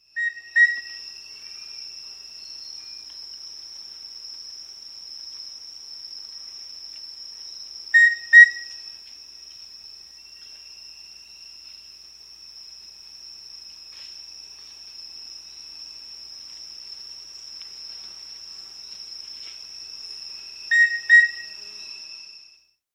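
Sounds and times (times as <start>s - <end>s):
Rufous-breasted antthrush calling in South America: 0.2s - 1.0s, 8.0s - 8.8s, 20.7s - 21.6s.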